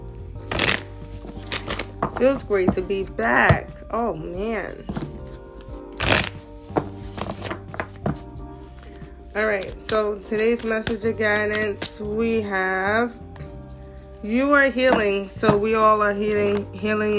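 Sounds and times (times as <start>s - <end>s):
deck of cards being shuffled: 0.4s - 2.4s, 4.9s - 12.1s
speech: 2.2s - 5.0s, 9.4s - 13.2s, 14.2s - 17.1s.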